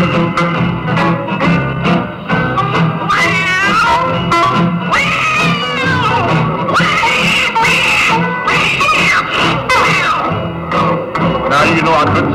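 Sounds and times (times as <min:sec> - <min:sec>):
steady rhythmic backing: 0:00.0 - 0:12.3
tomcats fighting and caterwauling: 0:03.1 - 0:04.1, 0:04.9 - 0:10.3.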